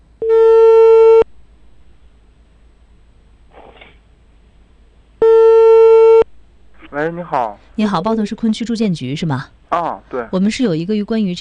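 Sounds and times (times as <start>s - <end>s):
telephone ringback tone while call connects: 0.2s - 1.2s, 5.2s - 6.2s
speech: 7.0s - 11.4s.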